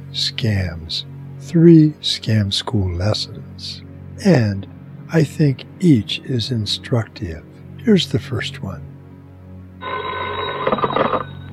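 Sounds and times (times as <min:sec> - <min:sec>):
speech: 0:00.1 - 0:08.9
telephone ringing in a jangling burst: 0:09.8 - 0:11.5.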